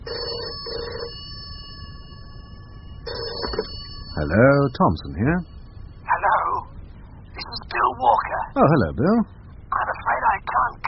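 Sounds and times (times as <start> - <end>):
office telephone ringing with an electronic trill: 0.0 - 5.1
steady hum: 0.0 - 10.8
speech: 4.2 - 5.5, 8.6 - 9.4.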